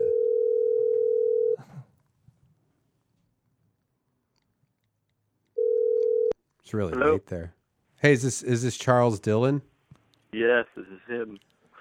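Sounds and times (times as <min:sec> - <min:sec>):
telephone dial tone while a call is being placed: 0:00.0 - 0:01.6, 0:05.6 - 0:06.4
speech: 0:06.7 - 0:09.7, 0:10.3 - 0:11.5.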